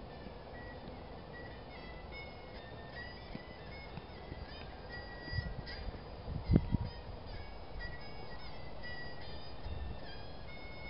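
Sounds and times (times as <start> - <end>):
man playing erhu in Temple of Heaven Park, Beijing, China: 0.0 - 10.8.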